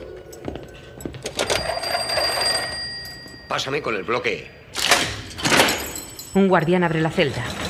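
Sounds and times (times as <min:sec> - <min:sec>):
telephone ringing at a prison: 0:01.3 - 0:04.7
speech: 0:03.5 - 0:04.6, 0:06.3 - 0:07.6.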